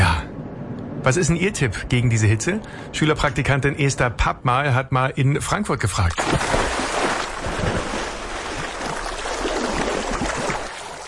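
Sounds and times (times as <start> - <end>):
speech: 1.0 - 6.8
water splashing and churning: 6.1 - 11.0.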